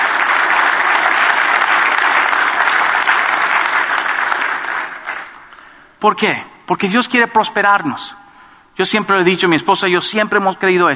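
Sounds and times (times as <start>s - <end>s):
large congregation applauding: 0.0s - 6.0s
speech: 6.0s - 8.2s, 8.8s - 10.9s.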